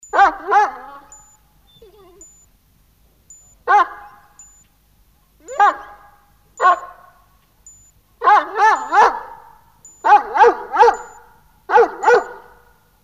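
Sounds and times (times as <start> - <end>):
dog barking: 0.1 - 2.4, 3.6 - 4.4, 5.4 - 7.2, 8.2 - 12.8.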